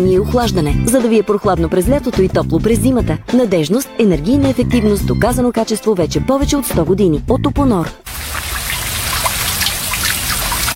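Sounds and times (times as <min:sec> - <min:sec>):
speech: 0:00.0 - 0:08.1
water spraying from a hand shower: 0:08.1 - 0:10.7.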